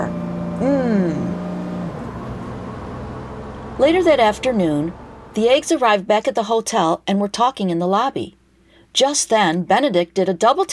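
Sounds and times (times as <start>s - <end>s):
bus engine rumble: 0.0s - 5.8s
bus road noise: 0.0s - 5.8s
low hum: 0.0s - 5.9s
speech: 0.6s - 1.2s, 3.8s - 8.4s, 9.0s - 10.7s.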